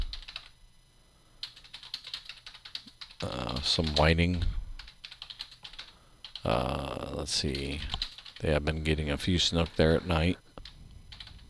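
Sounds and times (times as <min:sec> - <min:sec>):
typing on a computer keyboard: 0:00.0 - 0:00.5, 0:01.4 - 0:06.4, 0:07.5 - 0:08.4, 0:10.6 - 0:11.4
speech: 0:03.2 - 0:04.6, 0:06.4 - 0:10.4.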